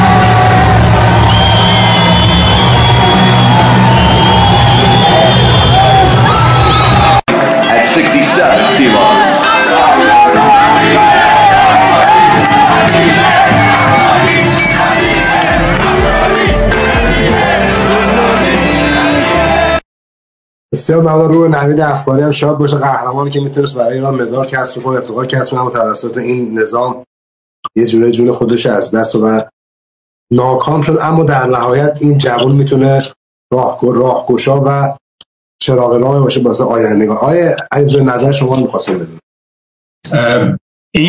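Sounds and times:
large crowd cheering and shouting: 0:00.0 - 0:19.8
speech: 0:20.7 - 0:27.1, 0:27.7 - 0:29.6, 0:30.3 - 0:35.0, 0:35.6 - 0:39.2, 0:40.0 - 0:41.0.

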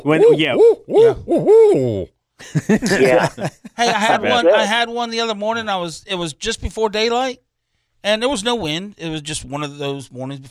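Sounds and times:
person imitating owl hoots to call owls: 0:00.0 - 0:02.2
speech: 0:00.0 - 0:10.4
laughter: 0:02.4 - 0:04.7.

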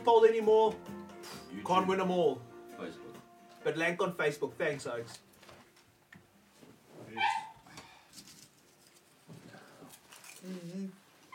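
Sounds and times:
speech: 0:00.0 - 0:05.3
small dog yelping: 0:07.2 - 0:07.6.

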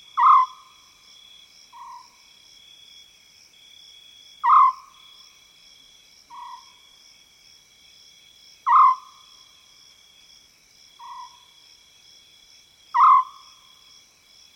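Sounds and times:
continuous insect drone: 0:00.0 - 0:14.5
wild African scops owl calls in South Luangwa savanna woodland: 0:00.2 - 0:00.7, 0:04.4 - 0:05.0, 0:08.6 - 0:09.2, 0:13.0 - 0:13.4.

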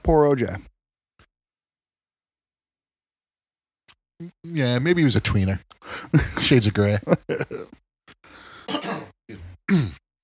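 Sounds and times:
speech: 0:00.0 - 0:00.7, 0:04.2 - 0:10.0
laughter: 0:05.9 - 0:07.8, 0:08.7 - 0:09.1
person clearing throat: 0:08.7 - 0:10.0.

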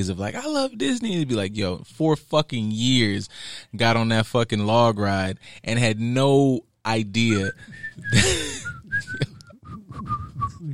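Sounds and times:
speech: 0:00.0 - 0:08.4
laughter: 0:07.3 - 0:09.6
person whistling a short tune: 0:07.3 - 0:10.7.

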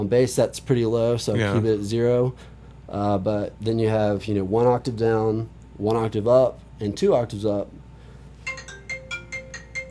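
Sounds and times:
speech: 0:00.0 - 0:07.8
faint hum: 0:00.0 - 0:09.8
phone ringtone of bright electronic beeps: 0:08.4 - 0:09.8.

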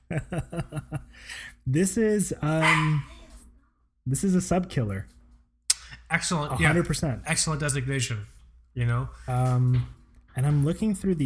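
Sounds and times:
laughter: 0:00.0 - 0:01.2
speech: 0:00.1 - 0:03.1, 0:04.1 - 0:05.2, 0:06.1 - 0:11.2
dog barking sharp high-pitched barks: 0:02.6 - 0:03.3.

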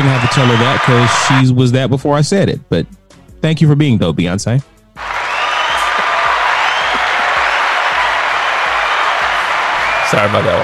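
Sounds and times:
crowd applause: 0:00.0 - 0:01.4, 0:05.0 - 0:10.6
faint crowd cheer: 0:00.0 - 0:01.5, 0:05.0 - 0:10.6
speech: 0:00.3 - 0:05.1, 0:10.1 - 0:10.6.

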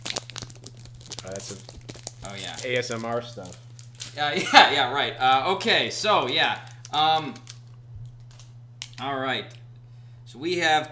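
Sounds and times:
foil pack of trading cards tearing open: 0:00.0 - 0:04.6, 0:06.1 - 0:09.0
steady low hum: 0:00.0 - 0:10.9
speech: 0:01.3 - 0:03.6, 0:04.2 - 0:07.4, 0:09.0 - 0:09.6, 0:10.3 - 0:10.9.

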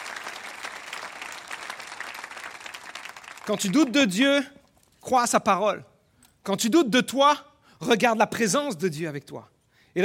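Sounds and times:
audience applauding: 0:00.0 - 0:04.0
speech: 0:03.5 - 0:10.0.

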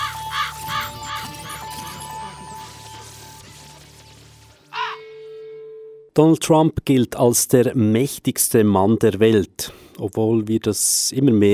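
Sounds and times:
raven cawing: 0:00.0 - 0:02.0
speech: 0:06.2 - 0:11.5.

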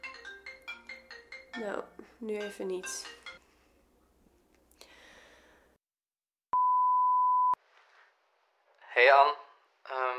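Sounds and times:
speech: 0:01.6 - 0:03.2, 0:09.0 - 0:09.4
phone electronic beep signalling an incoming call: 0:06.6 - 0:07.6.

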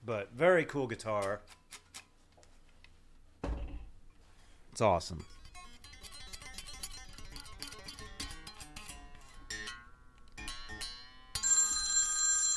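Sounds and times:
speech: 0:00.0 - 0:01.8, 0:04.8 - 0:05.3
telephone ringing with electronic tones for an incoming call: 0:11.4 - 0:12.5.

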